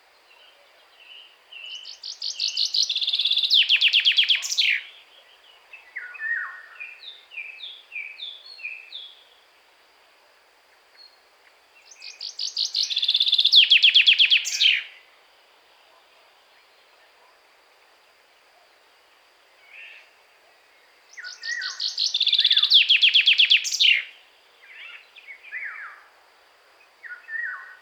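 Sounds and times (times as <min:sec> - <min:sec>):
common chaffinch song: 0:00.0 - 0:09.4, 0:11.8 - 0:15.1, 0:20.8 - 0:26.0.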